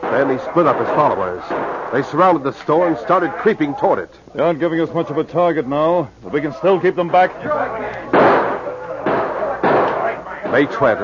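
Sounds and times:
gunshots from attackers firing on a store during a siege: 0:00.0 - 0:02.4, 0:08.1 - 0:11.0
speech: 0:00.1 - 0:08.4, 0:10.5 - 0:11.0.

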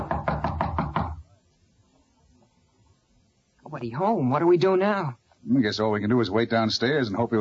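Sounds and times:
knocking on the door of a room at the end of a hall: 0:00.0 - 0:01.3
speech: 0:03.7 - 0:07.3.

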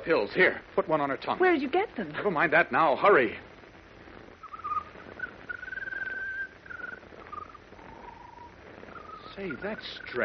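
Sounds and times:
speech: 0:00.0 - 0:03.5, 0:09.4 - 0:10.2
soft hiss: 0:00.0 - 0:10.2
bird singing a peculiar whistling song of wavering trills: 0:04.4 - 0:10.2.

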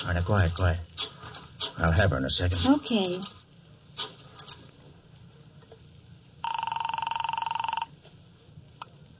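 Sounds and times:
speech: 0:00.0 - 0:00.9, 0:01.8 - 0:03.4
buzzy telephone ring through the line: 0:06.4 - 0:08.0.

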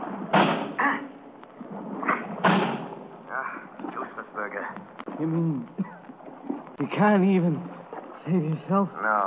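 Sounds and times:
heavy crashes of someone trying to break down a door: 0:00.3 - 0:00.8, 0:02.4 - 0:02.9
speech: 0:05.2 - 0:05.8, 0:06.8 - 0:07.7, 0:08.3 - 0:09.2.

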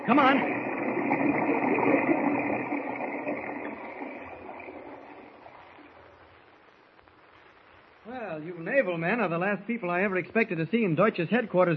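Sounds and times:
splashing water of people swimming: 0:00.0 - 0:06.4
speech: 0:00.1 - 0:02.0, 0:08.8 - 0:11.7.

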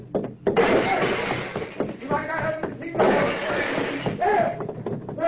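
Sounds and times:
parts of a machine breaking and clattering: 0:00.1 - 0:05.1
crowbar smashing a machine: 0:00.6 - 0:02.0, 0:03.0 - 0:04.2.

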